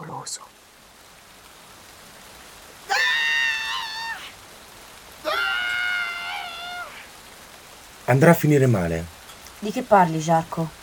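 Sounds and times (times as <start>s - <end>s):
faint hiss: 0.0s - 10.8s
speech: 0.2s - 0.6s, 8.1s - 10.8s
woman screaming in the pain of childbirth: 2.9s - 4.4s, 5.2s - 7.1s.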